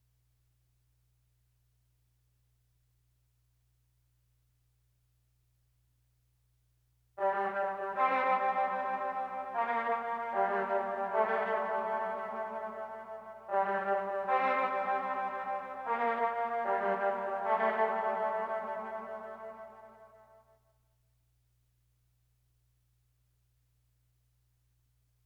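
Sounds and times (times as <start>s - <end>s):
dark horn melody loop in D minor at 152 BPM: 7.2s - 20.2s.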